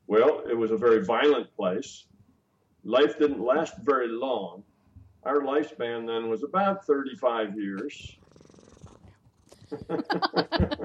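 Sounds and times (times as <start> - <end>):
speech: 0.1 - 2.1, 2.8 - 8.2, 9.7 - 10.8
cat purring: 7.8 - 10.0
laughter: 9.6 - 10.8.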